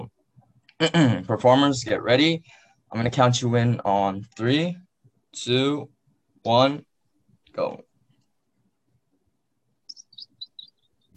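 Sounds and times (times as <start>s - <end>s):
speech: 0.8s - 6.9s, 7.6s - 7.9s
bird in a forest chirping: 9.9s - 11.1s.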